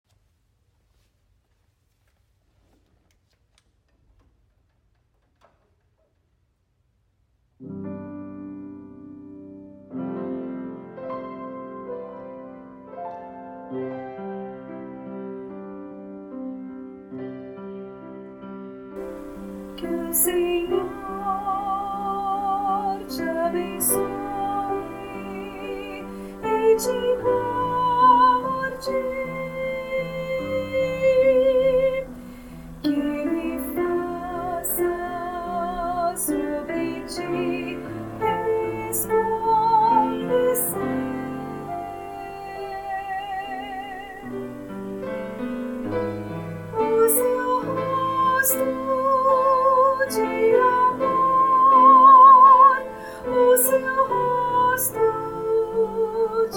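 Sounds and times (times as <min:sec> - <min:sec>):
soprano choir singing: 0:19.0 - 0:44.8, 0:45.7 - 0:56.5.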